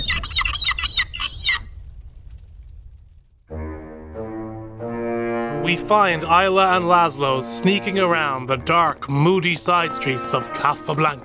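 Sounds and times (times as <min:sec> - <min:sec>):
blackbird giving sharp chattering calls: 0:00.0 - 0:01.7
speech: 0:05.7 - 0:11.2.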